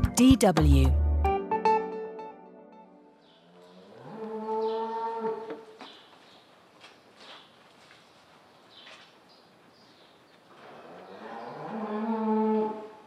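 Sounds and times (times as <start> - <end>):
speech: 0.2 - 1.0
ambient barn noise: 3.3 - 13.0
dairy cows mooing in a barn: 3.4 - 5.7, 10.6 - 13.0
shuffling in a barn: 5.6 - 10.5.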